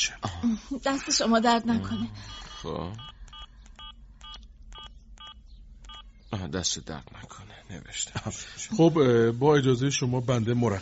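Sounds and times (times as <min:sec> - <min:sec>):
speech: 0:00.0 - 0:03.1, 0:06.3 - 0:10.8
mobile phone keypad tones while entering a phone number: 0:01.8 - 0:06.1.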